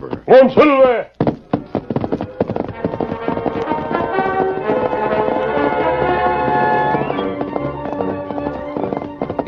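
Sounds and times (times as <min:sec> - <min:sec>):
great horse galloping hoofbeats in the darkness: 0:00.0 - 0:09.4
speech: 0:00.3 - 0:01.2
loud sweeping orchestral music: 0:02.7 - 0:09.3.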